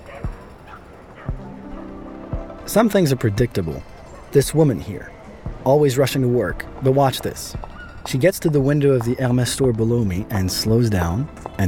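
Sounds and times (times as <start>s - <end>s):
dog barks from a pack of dogs on a city street: 0.0s - 2.0s
speech: 2.7s - 11.6s.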